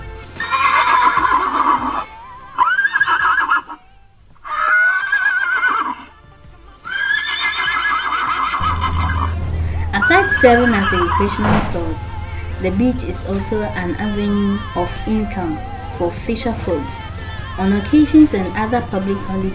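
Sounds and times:
horses at a beach neighing and whinnying: 0.4s - 3.8s, 4.4s - 6.2s, 6.8s - 9.3s
speech: 10.4s - 19.5s.

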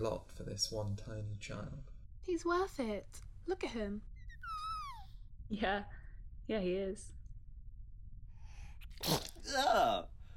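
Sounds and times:
speech: 0.0s - 4.6s, 5.5s - 7.2s, 9.0s - 10.1s
baby giving high-pitched squeaky whimper: 4.2s - 5.2s
baby sneezing: 9.0s - 9.7s.

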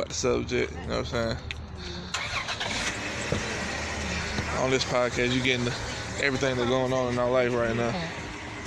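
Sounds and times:
speech: 0.1s - 2.0s, 4.5s - 8.6s
car engine starting: 1.6s - 8.6s.

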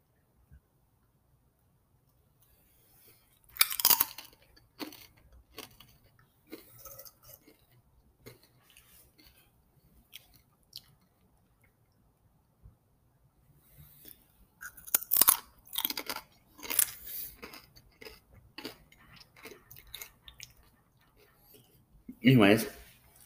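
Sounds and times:
person chewing and eating food: 3.0s - 12.1s, 13.8s - 21.9s
speech: 22.2s - 22.8s.

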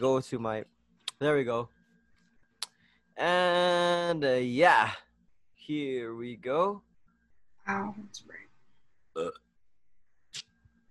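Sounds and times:
speech: 0.0s - 1.8s, 3.2s - 5.0s, 5.7s - 6.9s, 7.7s - 8.4s, 9.2s - 9.4s
short gurgly burp: 9.2s - 9.5s.

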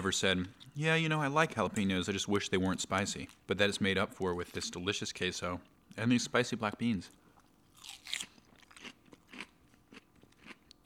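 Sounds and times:
speech: 0.0s - 7.2s
romaine lettuce crunching while chewed: 7.4s - 10.8s.

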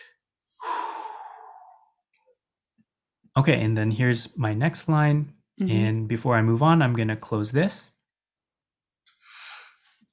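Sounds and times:
long deep breath taken while recording: 0.5s - 1.9s, 9.2s - 9.9s
speech: 3.4s - 7.9s.

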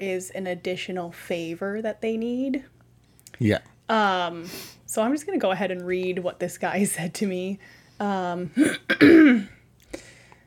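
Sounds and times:
speech: 0.0s - 2.8s, 3.4s - 9.6s
person clearing throat before reading an email aloud: 8.6s - 9.6s.

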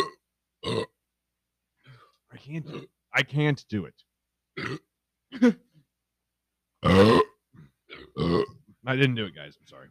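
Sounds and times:
loud burp: 0.0s - 1.0s, 2.6s - 3.0s, 4.6s - 5.6s, 6.8s - 8.6s
speech: 2.4s - 5.7s, 6.8s - 7.3s, 8.2s - 9.9s.

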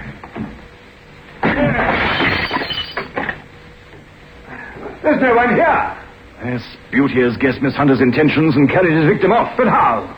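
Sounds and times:
locked wooden door forced open with a loud splintering crash: 1.4s - 3.4s
rattling debris: 1.5s - 3.4s
speech: 5.2s - 10.1s.

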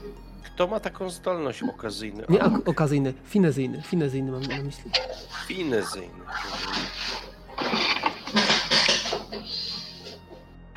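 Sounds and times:
speech: 0.1s - 6.9s
metal pots being thrown and clattering: 4.4s - 5.7s, 6.4s - 9.8s.

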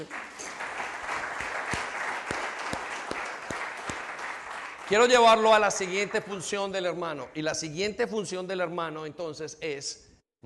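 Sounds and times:
audience applauding: 0.0s - 6.9s
speech: 4.9s - 10.1s.

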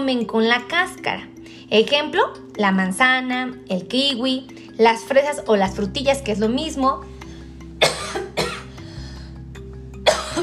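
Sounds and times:
speech: 0.0s - 7.2s
person coughing: 7.8s - 8.8s, 10.0s - 10.4s.

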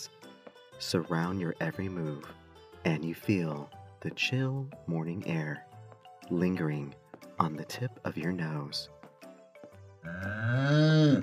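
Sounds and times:
speech: 0.8s - 5.7s, 6.3s - 9.0s, 10.0s - 11.2s
cow mooing: 10.0s - 11.2s.

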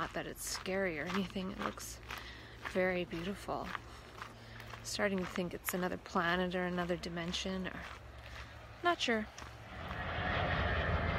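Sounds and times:
speech: 0.0s - 4.0s, 4.8s - 8.0s, 8.8s - 9.6s
airplane engine roar passing overhead: 9.2s - 11.1s.

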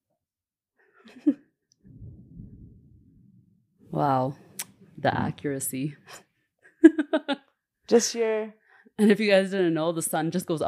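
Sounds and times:
speech: 1.0s - 1.4s, 4.0s - 4.4s, 5.0s - 6.3s, 7.2s - 10.6s
thunder rumbling after lightning: 1.8s - 5.8s
laughter: 6.8s - 7.4s.

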